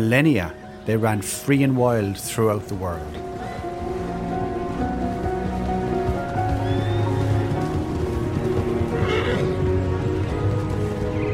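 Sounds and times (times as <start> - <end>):
speech: 0.0 - 3.4
rain-like noise: 2.7 - 11.3
horse whinnying: 6.5 - 10.2.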